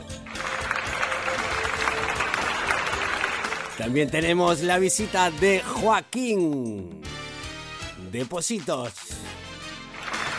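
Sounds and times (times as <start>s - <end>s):
crowd applauding: 0.0s - 4.2s, 9.6s - 10.3s
speech: 3.8s - 7.1s, 8.1s - 9.1s.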